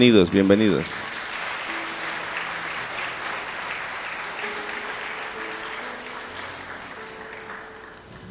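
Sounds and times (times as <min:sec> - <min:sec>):
speech: 0:00.0 - 0:01.1
church audience applauding to welcome first-time visitors: 0:00.0 - 0:08.2.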